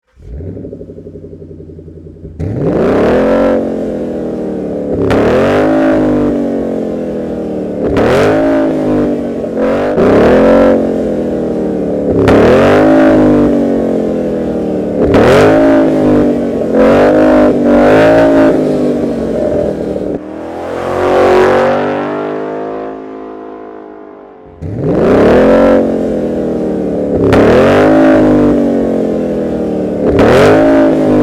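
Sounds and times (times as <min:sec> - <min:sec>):
car exhaust system: 0:00.0 - 0:31.2.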